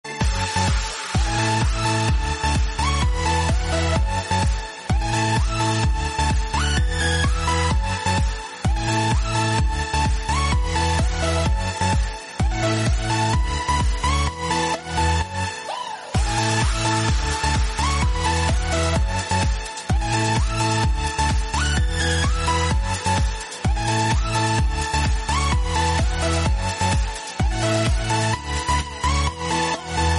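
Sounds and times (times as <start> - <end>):
instrumental music: 0.0 - 15.4, 16.2 - 30.1.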